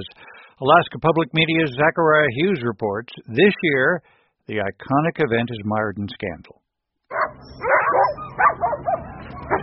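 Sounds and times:
speech: 0.0 - 6.6
sled dogs barking and yipping at the start of a sled dog race in Anchorage, Alaska: 7.1 - 9.6.

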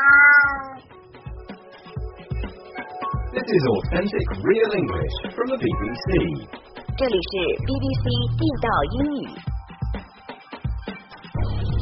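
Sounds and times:
cat meowing: 0.0 - 0.9
softer rhythmic thumping sounds: 1.0 - 11.8
speech: 3.4 - 9.5.

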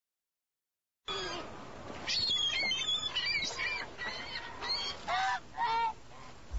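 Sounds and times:
ducks calling: 1.1 - 6.5
flock of Canada geese honking: 2.2 - 6.4.

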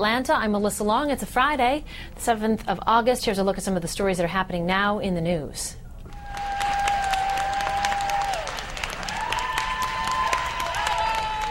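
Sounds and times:
speech: 0.0 - 5.8
large crowd in Los Angeles applauding and cheering: 6.1 - 11.4.

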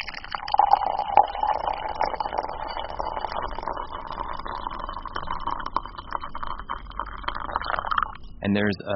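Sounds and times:
hot water poured into a mug: 0.0 - 8.2
speech: 8.4 - 8.9.

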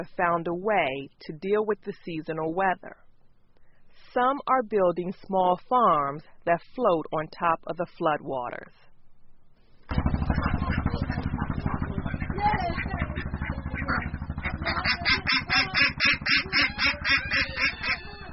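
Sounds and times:
speech: 0.0 - 3.0, 4.0 - 8.8, 15.8 - 18.1
flock of ducks quacking on a floating farm: 9.9 - 18.3.

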